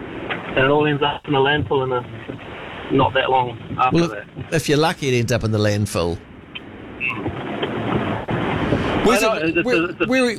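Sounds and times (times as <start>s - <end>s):
heavy rain pouring over a moving car: 0.0s - 6.1s, 7.2s - 10.3s
low road rumble: 0.0s - 10.3s
speech: 0.6s - 6.3s, 9.0s - 10.3s
brief high squeaks: 7.0s - 7.3s.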